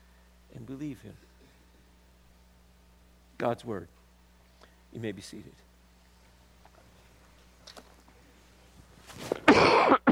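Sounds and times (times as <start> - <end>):
speech: 0.7 - 1.3, 3.4 - 4.0, 4.9 - 5.6
harsh cough: 9.4 - 10.1.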